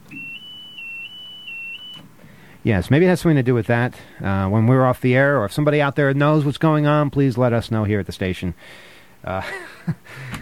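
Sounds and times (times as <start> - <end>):
radio studio alarm pulsing high-pitched electronic tone: 0.0 - 2.0
speech: 2.6 - 10.3.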